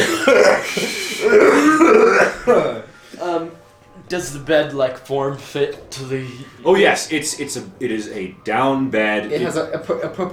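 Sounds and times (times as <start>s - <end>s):
person imitating a dragonborn coughing into a bed: 0.0s - 2.9s
person imitating throat clearing into a bed: 0.0s - 3.0s
laughter: 0.0s - 10.3s
speech: 0.2s - 2.6s, 4.1s - 10.3s.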